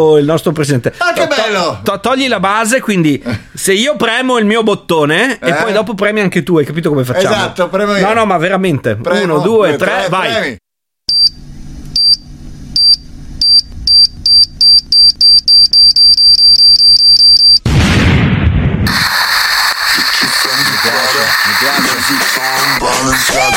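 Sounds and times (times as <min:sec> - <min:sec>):
speech: 0:00.0 - 0:10.6
rapid electronic beeps: 0:12.8 - 0:17.6
dry ice smoke effect hissing: 0:18.9 - 0:23.5.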